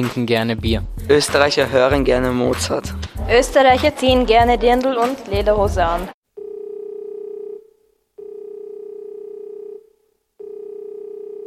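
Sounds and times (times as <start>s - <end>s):
speech: 0.0s - 6.2s
telephone ringing for an incoming call: 6.4s - 11.4s.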